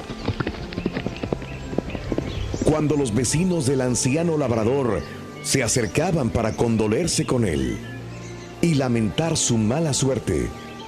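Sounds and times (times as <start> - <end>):
horse hooves galloping: 0.0 - 5.1
speech: 2.7 - 8.0, 8.6 - 10.6.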